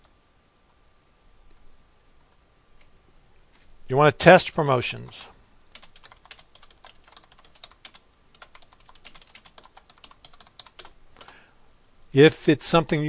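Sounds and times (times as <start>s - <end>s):
speech: 3.9s - 5.4s, 12.2s - 13.0s
computer keyboard typing: 5.7s - 11.4s.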